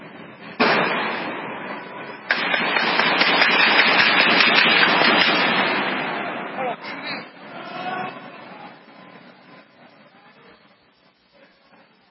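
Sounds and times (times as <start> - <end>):
rapid gunfire in police gun battle with a terrorist: 0.5 - 1.5, 2.2 - 6.4
gunshots in police gun battle with a terrorist: 0.5 - 6.5.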